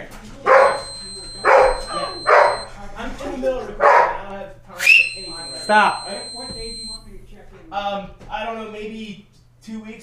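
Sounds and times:
dog barking: 0.5 - 2.7, 3.8 - 4.2
faint high electrical whine: 0.5 - 2.8, 4.8 - 7.1
speech: 5.7 - 6.1, 7.7 - 10.0.

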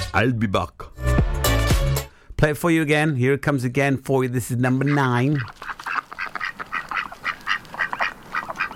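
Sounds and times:
speech: 0.1 - 1.0, 2.4 - 5.6
ducks quacking: 4.5 - 8.7.

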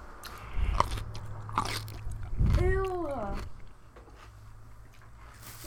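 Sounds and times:
crunchy bite into a pickle: 0.2 - 5.0.

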